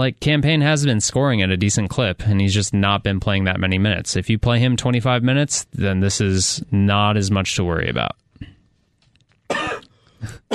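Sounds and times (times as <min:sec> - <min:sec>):
speech: 0:00.0 - 0:08.6
loud cough: 0:09.5 - 0:10.5
throat-clearing rasp: 0:09.5 - 0:10.5.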